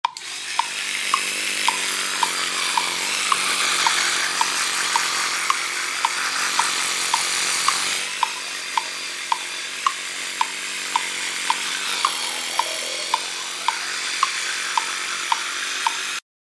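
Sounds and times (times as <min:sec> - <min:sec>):
toothbrush ticking: 0:00.0 - 0:16.2.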